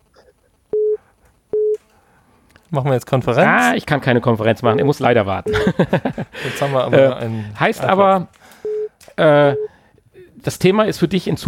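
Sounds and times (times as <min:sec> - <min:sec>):
electronic beeps announcing an incoming phone call: 0:00.7 - 0:01.8, 0:08.6 - 0:09.7
speech: 0:02.7 - 0:08.5, 0:09.2 - 0:09.7, 0:10.4 - 0:11.4
laughter: 0:05.5 - 0:07.6.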